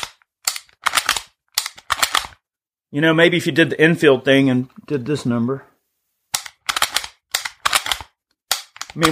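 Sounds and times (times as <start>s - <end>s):
empty gun action clicking while dry-fired: 0.0s - 2.4s, 6.4s - 9.0s
speech: 2.9s - 5.7s.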